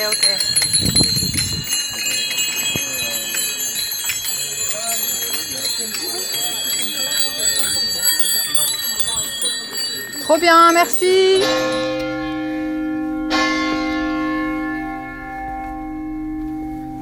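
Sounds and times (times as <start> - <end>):
speech: 0.0 - 1.0, 10.3 - 11.9
faint movement: 0.0 - 12.1
faint voices: 0.0 - 12.1
bright bell ringing: 0.0 - 16.1.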